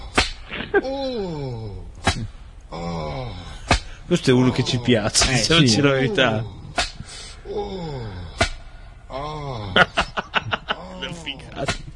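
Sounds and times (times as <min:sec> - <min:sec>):
man's deep drawn-out moan: 0:00.0 - 0:03.7, 0:04.4 - 0:06.8, 0:07.4 - 0:08.4, 0:09.1 - 0:11.6
whip cracks: 0:00.1 - 0:00.5
speech: 0:00.7 - 0:03.5, 0:04.1 - 0:06.6
laughter: 0:09.6 - 0:11.6.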